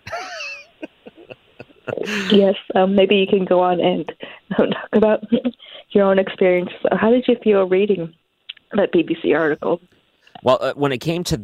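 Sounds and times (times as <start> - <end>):
laughter: 0.0 - 2.5
strained wavering vocal sound: 1.0 - 2.5
speech: 1.9 - 11.4.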